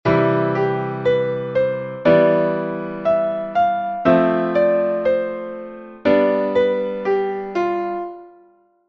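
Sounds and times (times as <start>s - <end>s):
melody chord: 0.1s - 8.8s.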